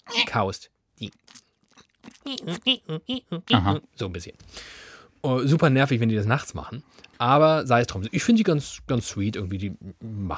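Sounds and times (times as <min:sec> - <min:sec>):
speech: 0:00.3 - 0:01.4, 0:02.2 - 0:10.3
voice imitating gecko call with rubbery chewing and squeaky chirps: 0:02.2 - 0:03.8.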